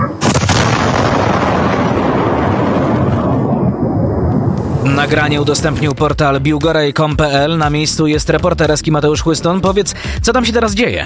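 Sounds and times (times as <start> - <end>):
missile strike explosion: 0.0 - 6.3
speech: 5.1 - 11.0.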